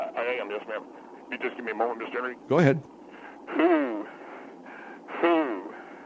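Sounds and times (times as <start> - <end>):
speech: 0.6 - 4.1
deliberate heavy breathing with a wheezy sighing tone: 3.0 - 6.0.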